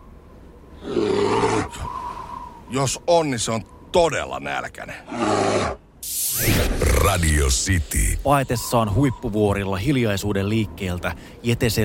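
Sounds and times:
bear roaring: 0.8 - 1.9, 5.1 - 5.8, 6.5 - 7.4
speech: 2.7 - 5.8, 7.1 - 11.8.

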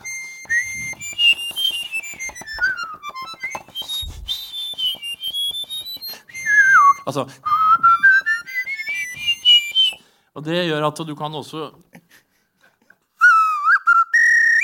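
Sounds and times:
person whistling a wavering sliding melody: 0.0 - 10.1, 13.2 - 14.6
speech: 7.1 - 7.5, 10.4 - 11.8.

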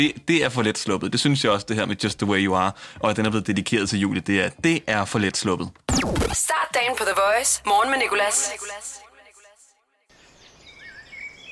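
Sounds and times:
speech: 0.0 - 9.1
brief vocal passage: 6.4 - 9.6
several birds chirping and tweeting outdoors: 10.1 - 11.5.

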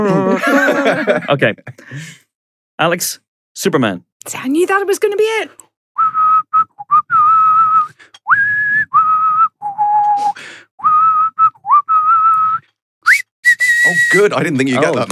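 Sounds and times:
laughter: 0.0 - 1.8
speech: 0.0 - 2.2, 2.8 - 6.2, 13.8 - 15.1
person whistling a bold heroic film theme tune: 6.0 - 14.3.

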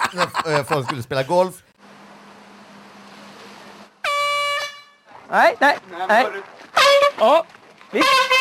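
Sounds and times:
laughter: 0.0 - 1.5
speech: 0.1 - 1.6, 5.3 - 6.6, 7.2 - 8.3
air horn blast at a golf club: 4.0 - 5.1, 8.0 - 8.3.

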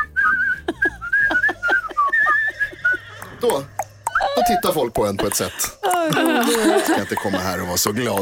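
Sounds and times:
person whistling a cheerful Christmas tune: 0.0 - 2.6
laughter: 0.4 - 8.2
speech: 3.4 - 3.7, 4.6 - 8.2.

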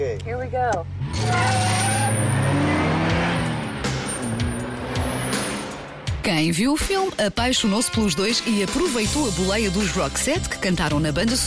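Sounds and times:
speech: 0.0 - 1.6, 6.2 - 11.4
sports car engine revving and accelerating through a gear change: 0.8 - 6.2.

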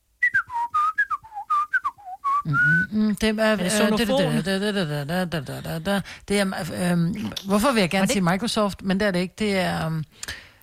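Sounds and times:
person whistling a ringtone melody: 0.2 - 2.9
speech: 2.4 - 10.4
several voices talking and laughing loudly: 3.6 - 6.0.

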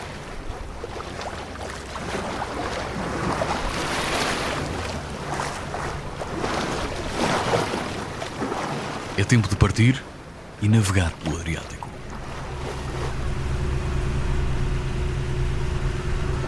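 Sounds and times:
steady wind: 0.0 - 16.4
water sloshing and lapping around a moored boat on ocean swell: 0.0 - 16.4
speech: 9.2 - 11.8.

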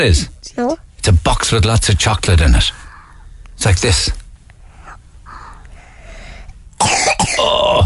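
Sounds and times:
speech: 0.0 - 2.8, 3.6 - 4.2, 6.8 - 7.8
faint hum: 0.0 - 7.8
child coughing: 6.8 - 7.8.

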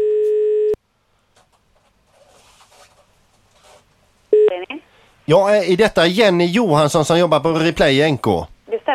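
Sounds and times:
outgoing phone call ringing tone: 0.0 - 0.8
speech: 5.3 - 8.5.

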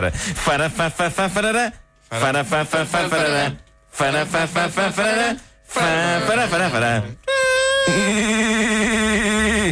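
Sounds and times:
speech: 0.0 - 7.2, 7.9 - 9.6
voice imitating siren-like theme tune of a Portuguese radio programme: 5.8 - 8.5.

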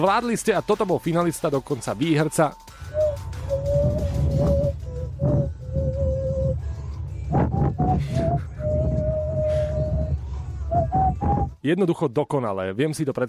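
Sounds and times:
speech: 0.0 - 2.7, 11.6 - 13.2
person imitating a fujara shepherd's flute with the mouth: 2.9 - 6.7, 7.3 - 11.6
rumbling undertone: 2.9 - 11.5.

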